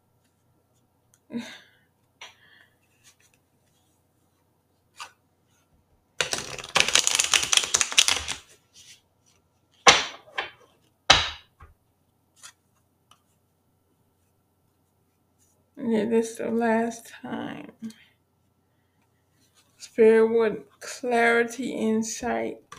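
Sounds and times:
speech: 1.3s - 1.6s, 15.9s - 18.0s, 20.0s - 22.6s
deck of cards being shuffled: 6.2s - 11.4s.

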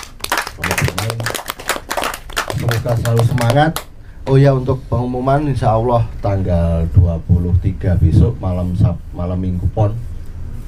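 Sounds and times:
audience applause for a theater group after a monologue performance: 0.0s - 3.8s
speech: 2.8s - 10.1s.

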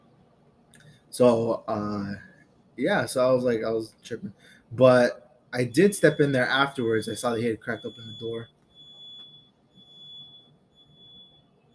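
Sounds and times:
speech: 1.1s - 8.6s
fire alarm going off with a piercing high-pitched tone: 5.6s - 11.7s.

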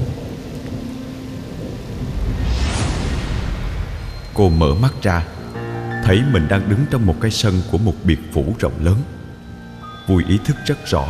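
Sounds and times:
deep thunder rumble: 0.0s - 6.6s
steady light rain falling outside: 0.0s - 11.0s
speech: 4.4s - 5.4s, 6.0s - 9.2s, 10.1s - 11.0s.

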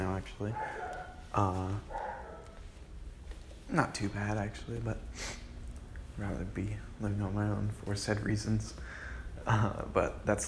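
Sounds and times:
speech: 0.2s - 2.0s, 3.7s - 5.4s, 6.2s - 10.4s
dog barking: 0.4s - 2.6s.

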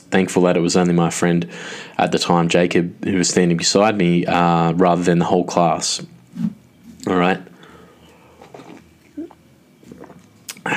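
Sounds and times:
speech: 0.1s - 7.5s
person slurping and swallowing cappuccino: 8.4s - 10.7s.

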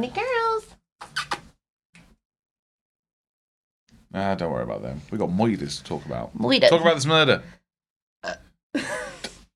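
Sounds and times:
speech: 0.0s - 0.7s, 4.1s - 7.6s
throaty burp: 8.2s - 8.6s.

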